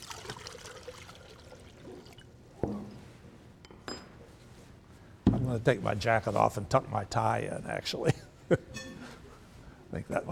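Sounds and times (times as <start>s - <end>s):
liquid latex mold builder pouring into water: 0.0s - 2.4s
speech: 5.5s - 9.0s, 10.0s - 10.2s.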